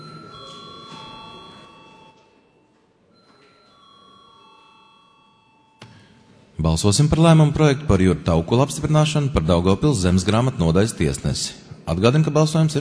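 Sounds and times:
bell rung in a parliament to call a vote: 0:00.0 - 0:05.8
low murmur of room noise: 0:00.0 - 0:12.7
speech: 0:06.6 - 0:12.7.

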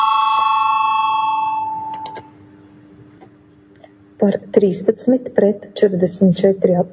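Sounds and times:
electric parliamentary voting bell ringing: 0:00.0 - 0:02.2
speech: 0:04.2 - 0:06.9.

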